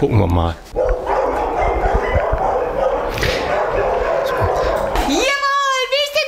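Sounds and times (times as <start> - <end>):
speech: 0.0 - 0.8
dog barking excitedly in greeting: 0.7 - 6.1.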